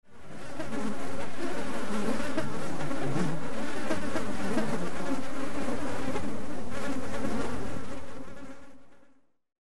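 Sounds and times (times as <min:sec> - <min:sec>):
mosquito swarm: 0:00.1 - 0:09.3.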